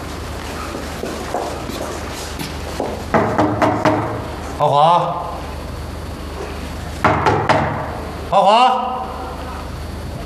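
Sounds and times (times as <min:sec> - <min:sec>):
firm knocking on a door: 0:03.1 - 0:04.2, 0:07.0 - 0:07.9
speech: 0:04.6 - 0:05.4, 0:08.3 - 0:09.1.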